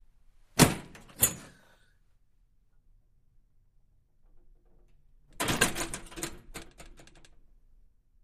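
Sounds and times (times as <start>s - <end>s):
wooden door with push bar: 0.6s - 1.6s, 5.3s - 7.3s.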